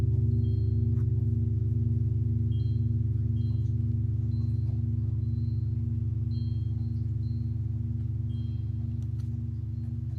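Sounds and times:
faint short high whistling tones: 0:00.0 - 0:01.3, 0:02.4 - 0:10.1
large singing bowls ringing in a deep humming drone: 0:00.0 - 0:10.1.

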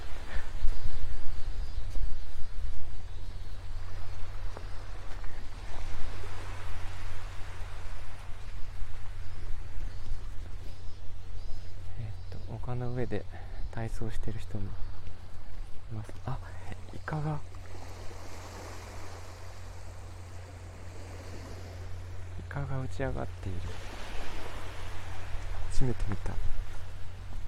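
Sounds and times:
ocean waves breaking on a beach: 0:00.0 - 0:12.4, 0:13.0 - 0:27.4
speech: 0:13.1 - 0:14.9, 0:15.9 - 0:17.5, 0:22.6 - 0:24.0, 0:25.8 - 0:26.5.

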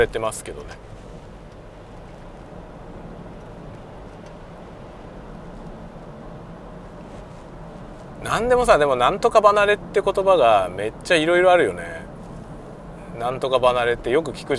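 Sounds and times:
speech: 0:00.0 - 0:00.9, 0:08.2 - 0:12.0, 0:13.2 - 0:14.5
road noise rumbling inside a moving car: 0:00.0 - 0:14.5.

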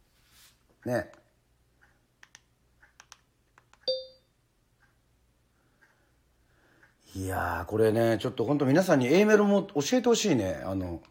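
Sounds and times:
humming room: 0:00.0 - 0:11.0
speech: 0:00.8 - 0:01.2, 0:07.2 - 0:11.0
clock ticking: 0:00.8 - 0:11.0
bright ringing chime: 0:03.9 - 0:04.3.

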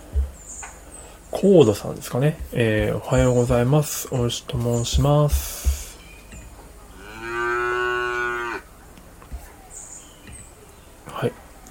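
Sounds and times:
speech: 0:01.3 - 0:05.8
cow mooing: 0:06.9 - 0:08.7.

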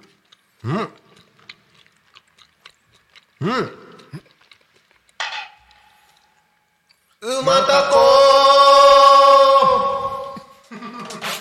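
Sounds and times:
person chewing fatty meat: 0:00.0 - 0:07.2
person humming: 0:00.6 - 0:01.0, 0:03.4 - 0:04.1, 0:07.2 - 0:11.1
speech: 0:00.6 - 0:01.0, 0:03.4 - 0:03.8.

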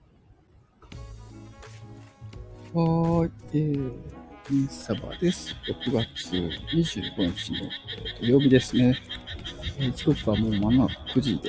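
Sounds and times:
speech: 0:02.7 - 0:11.4
frogs croaking outdoors in a park: 0:04.5 - 0:11.4.

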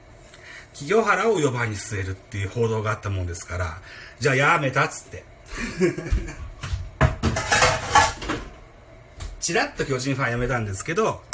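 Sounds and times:
speech: 0:00.8 - 0:06.5, 0:09.5 - 0:11.3
pots and plates clattering while being washed: 0:07.0 - 0:08.5.

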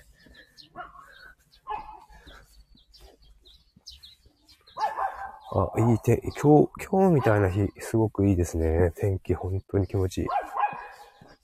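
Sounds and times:
dog barking outdoors during a morning walk: 0:00.7 - 0:02.1, 0:04.8 - 0:05.9, 0:07.1 - 0:07.6, 0:10.3 - 0:11.3
speech: 0:05.5 - 0:10.6.

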